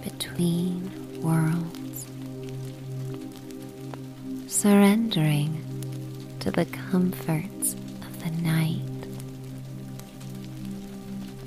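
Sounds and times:
steady rain pattering on a surface: 0.0s - 11.4s
speech: 0.4s - 1.8s, 4.6s - 5.5s, 6.5s - 8.9s.

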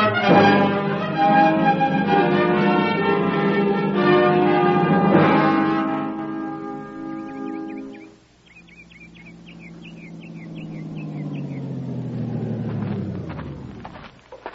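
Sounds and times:
truck engine driving along a dirt road across a ravine: 0.1s - 14.5s
small birds chirping: 5.7s - 14.5s.

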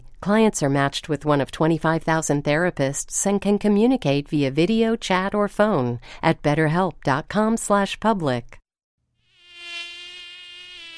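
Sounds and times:
speech: 0.2s - 8.6s
mosquito buzzing: 9.2s - 10.9s.

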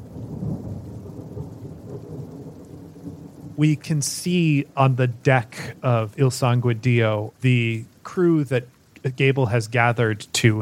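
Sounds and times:
deep rumbling wash of wind or thunder: 0.0s - 3.6s
dense rain in a heavy storm: 0.0s - 10.6s
speech: 3.6s - 10.6s.

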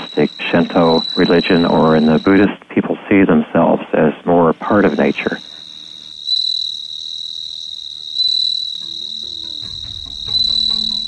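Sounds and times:
singing insects chirping in a high shrill trill: 0.0s - 11.0s
speech: 0.2s - 5.5s.

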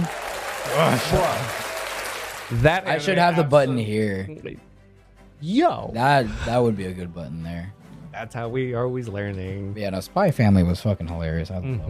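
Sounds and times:
crowd applause: 0.0s - 3.4s
speech: 0.8s - 1.6s, 2.5s - 4.7s, 5.4s - 11.8s.

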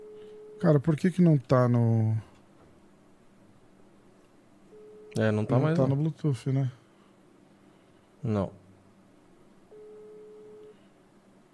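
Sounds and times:
telephone ringback tone of a call waiting to be answered: 0.0s - 0.7s, 4.7s - 5.2s, 9.7s - 10.8s
soft hiss: 0.0s - 11.5s
speech: 0.6s - 2.3s, 5.2s - 6.8s, 8.2s - 8.6s.

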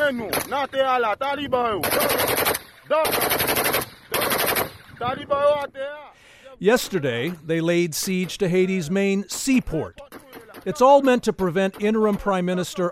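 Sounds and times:
speech: 0.1s - 3.7s, 5.0s - 6.0s, 6.6s - 12.9s
semi-automatic rifle fire: 1.8s - 5.1s, 10.0s - 12.4s.

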